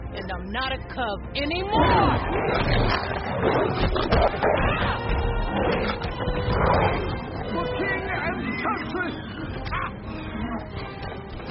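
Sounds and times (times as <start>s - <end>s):
busy noisy background: 0.0s - 11.4s
speech: 0.3s - 7.7s
bird squawking: 7.8s - 10.7s.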